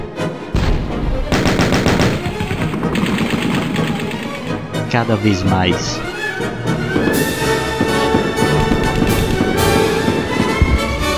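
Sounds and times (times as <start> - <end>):
distant battle gunfire: 0.6 - 4.9, 6.9 - 11.1
machine-gun rattle from a battle: 1.4 - 4.8
speech: 4.9 - 6.1.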